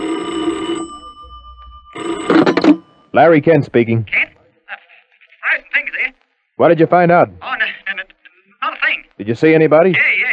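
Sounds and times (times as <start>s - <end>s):
telephone bell ringing: 0.0s - 3.2s
speech: 3.2s - 4.3s, 6.6s - 7.6s, 9.2s - 10.1s.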